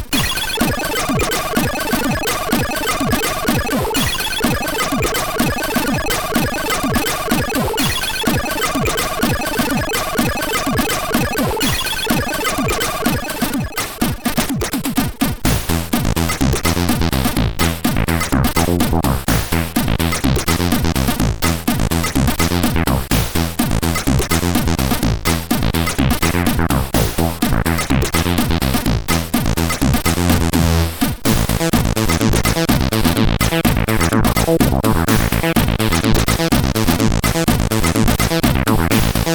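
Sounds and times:
bass and drums on SID 8580 sound chip: 0:00.1 - 0:39.3.

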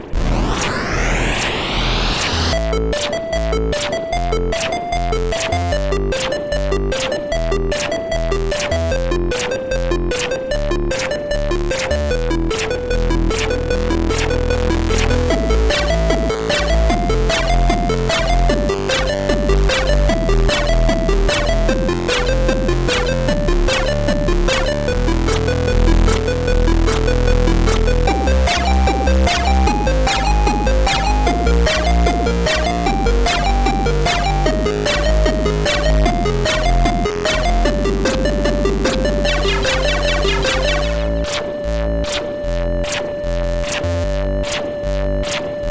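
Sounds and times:
chiptune music from a MOS6581R3 sound chip: 0:00.2 - 0:45.6.

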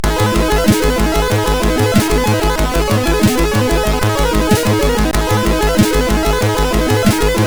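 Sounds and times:
outro music: 0:00.0 - 0:07.4.

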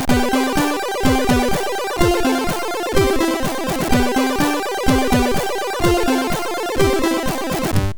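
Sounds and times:
short chiptune melody on a MOS6581 sound chip: 0:00.1 - 0:07.8.

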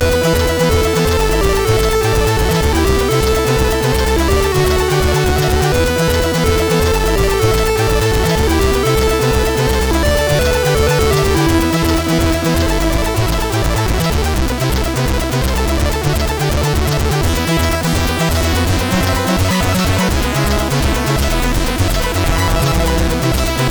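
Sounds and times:
synth bass from a CSG8580R5 SID chip: 0:00.0 - 0:23.6.

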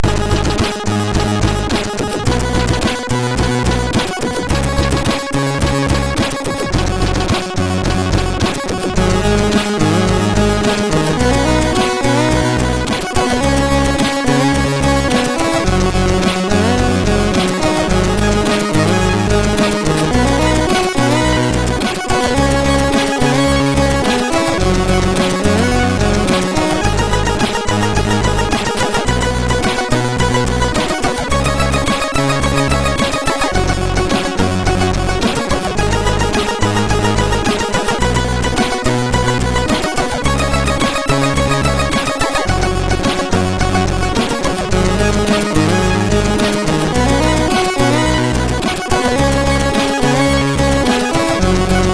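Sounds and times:
simple chiptune music on a MOS6581R3 sound chip: 0:00.0 - 0:51.9.

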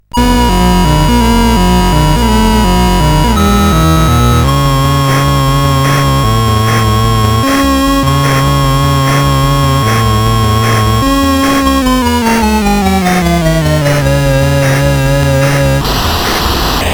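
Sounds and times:
MOS 8580 SID chip game music: 0:00.1 - 0:16.8.

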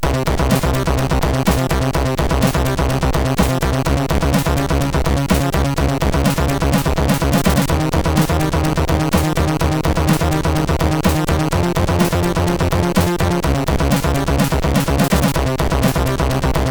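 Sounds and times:
chiptune music on MOS6581 sound chip: 0:00.0 - 0:16.6.

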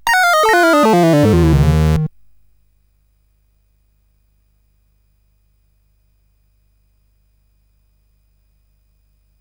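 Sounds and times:
game music on a SID CSG8580R5 chip: 0:00.0 - 0:02.1.

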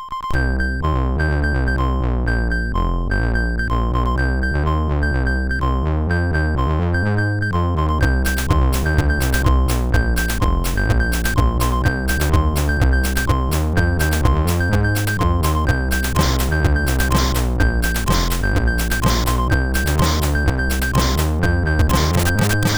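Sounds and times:
acid synth music on a MOS6581R2 sound chip: 0:00.3 - 0:22.7.

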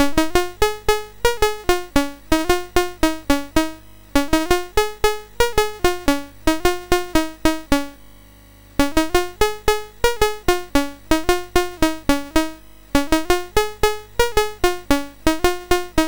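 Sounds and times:
MOS 6581R4 SID chip synth sound: 0:00.0 - 0:08.0, 0:08.8 - 0:16.0.

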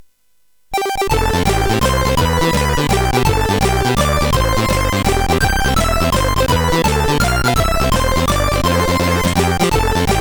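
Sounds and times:
synthesizer sound chip melody: 0:00.8 - 0:10.1.

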